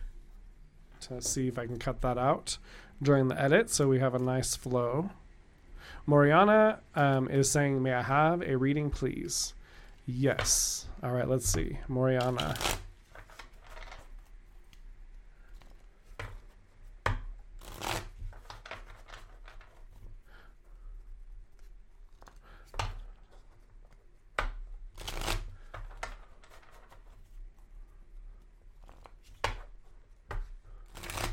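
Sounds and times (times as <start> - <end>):
low hum: 0.0 - 31.3
speech: 1.0 - 5.2, 5.8 - 12.8
deck of cards being shuffled: 11.5 - 14.8, 17.6 - 20.1, 21.6 - 27.7, 28.7 - 31.3.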